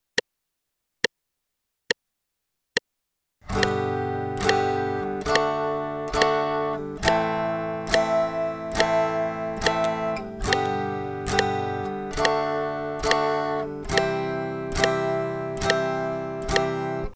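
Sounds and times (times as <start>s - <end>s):
guitar strumming downstrokes: 3.5s - 17.1s.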